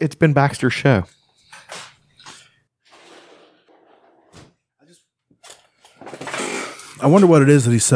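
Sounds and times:
speech: 0.0s - 1.9s, 7.0s - 7.9s
dog scratching, rustling and thumping in a room: 2.9s - 4.6s.

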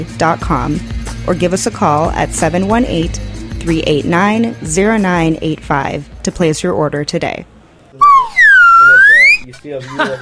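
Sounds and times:
speech: 0.0s - 7.5s, 9.5s - 10.2s
slide whistle: 8.0s - 9.5s
laughter: 9.5s - 10.2s.

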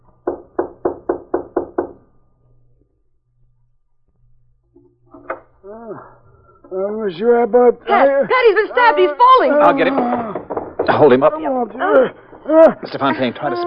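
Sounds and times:
knocking on a wooden cabin door: 0.2s - 2.0s, 9.6s - 12.5s
speech: 6.7s - 10.2s, 10.9s - 13.6s
laughter: 7.8s - 13.6s.

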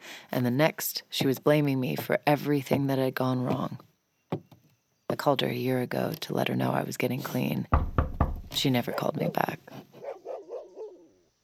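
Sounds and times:
speech: 0.3s - 3.9s, 5.2s - 9.8s
dog barking: 8.9s - 11.2s.

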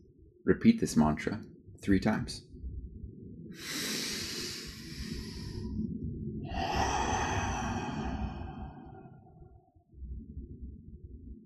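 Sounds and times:
speech: 0.4s - 2.5s, 3.6s - 3.9s
steady low drone: 2.5s - 11.4s
slow deep breath: 3.5s - 9.6s.

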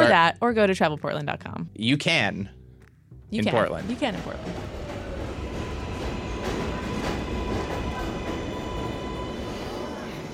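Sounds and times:
speech: 0.1s - 2.6s, 3.3s - 4.8s
subway train rumble: 3.5s - 10.3s.

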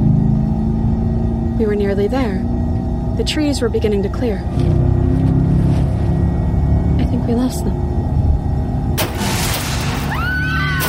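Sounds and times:
low rumble: 0.0s - 10.8s
speech: 1.6s - 2.5s, 3.2s - 4.8s, 7.2s - 7.9s
car metal crunching as something lands on the hood: 9.0s - 10.8s.

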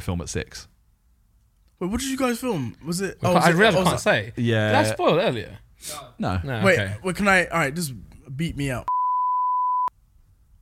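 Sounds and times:
speech: 0.0s - 0.7s, 1.8s - 9.0s
censor bleep over spoken words: 8.9s - 9.9s.

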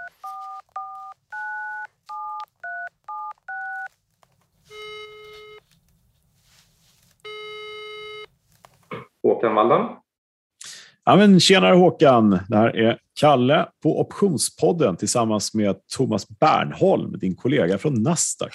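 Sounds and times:
longer buzzing telephone ring tones: 0.0s - 3.9s, 4.7s - 5.6s, 7.3s - 8.3s
touch-tone telephone dialing beeps: 0.0s - 3.9s, 4.7s - 5.6s
speech: 9.4s - 10.0s, 11.1s - 18.5s.

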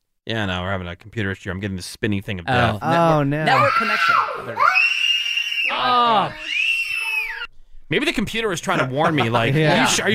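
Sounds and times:
speech: 0.3s - 5.1s, 5.7s - 6.5s, 7.9s - 10.1s
toddler screaming at a piercing high pitch: 3.5s - 7.5s
laughter: 8.5s - 10.1s.

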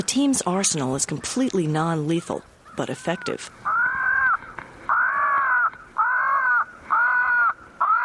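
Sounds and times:
speech: 0.0s - 3.7s
faint noise: 0.0s - 8.0s
tape recording of crow distress call through a loudspeaker: 2.6s - 8.0s.

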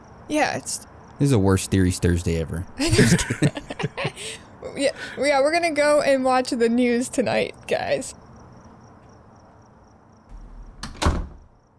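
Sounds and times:
faint steady hum: 0.0s - 11.7s
speech: 0.3s - 8.2s
laughter: 2.8s - 4.4s
front door opening and closing: 10.3s - 11.6s.

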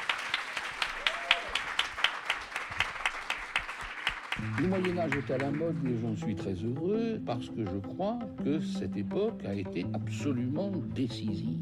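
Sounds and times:
audience applauding at a live session: 0.0s - 6.2s
speech: 4.4s - 11.6s.

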